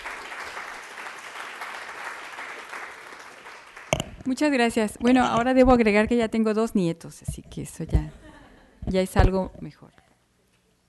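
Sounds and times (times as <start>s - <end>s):
audience applause to open a conference: 0.0s - 4.0s
speech: 4.2s - 8.2s, 8.9s - 10.0s.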